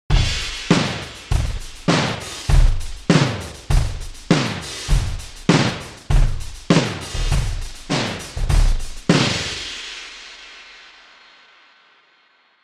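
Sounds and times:
drums crashing: 0.1s - 11.0s.

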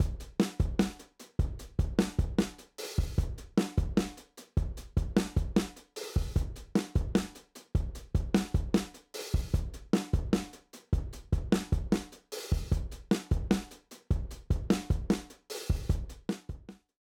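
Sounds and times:
1970s drum kit: 0.0s - 16.8s.

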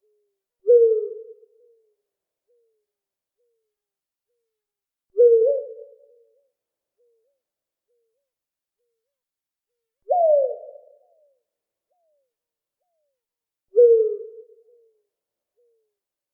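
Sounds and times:
owl hooting: 0.1s - 1.9s, 5.2s - 6.0s, 10.1s - 11.3s, 13.8s - 14.9s.

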